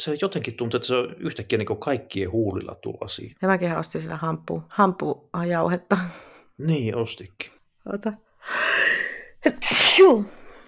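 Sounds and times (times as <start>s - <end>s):
speech: 0.0s - 10.4s
person sneezing: 9.5s - 10.5s.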